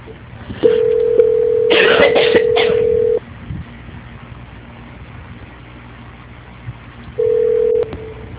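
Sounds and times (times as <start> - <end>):
low hum: 0.0 - 8.3
telephone tones during a call transfer: 0.6 - 1.7, 2.4 - 3.2, 7.2 - 8.3.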